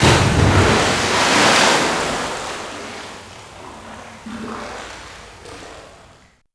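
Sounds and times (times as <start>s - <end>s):
huge water splash: 0.0s - 5.2s.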